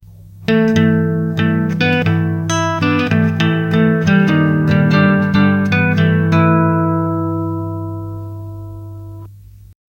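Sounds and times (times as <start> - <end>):
guitar playing love song: 0.4 - 9.3.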